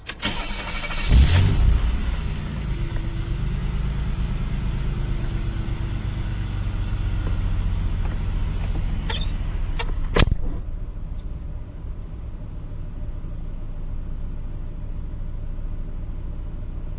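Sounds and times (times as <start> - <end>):
car engine cranking, revving and idling: 0.2 - 16.8
car door thudding shut: 9.9 - 10.6.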